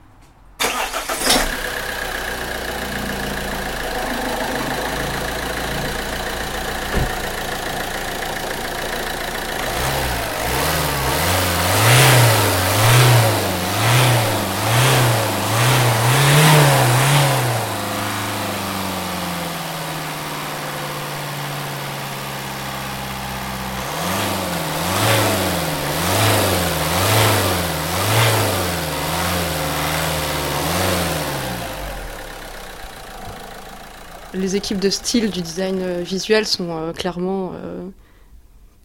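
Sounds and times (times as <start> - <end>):
car engine starting, idling and revving: 0.6 - 36.8
speech: 34.4 - 38.0.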